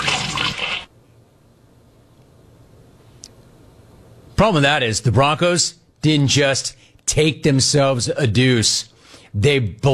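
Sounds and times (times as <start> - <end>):
toilet flushing: 0.0 - 0.9
speech: 4.4 - 9.9.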